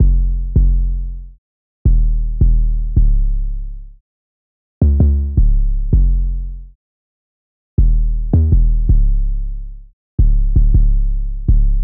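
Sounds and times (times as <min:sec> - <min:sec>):
808 bass in F minor: 0:00.0 - 0:01.2, 0:01.9 - 0:03.7, 0:04.8 - 0:06.6, 0:07.8 - 0:11.8.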